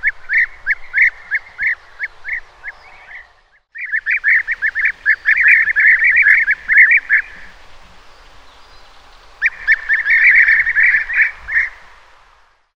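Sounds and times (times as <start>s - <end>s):
European bee-eater Merops apiaster giving rolling burry notes: 0.0s - 12.2s.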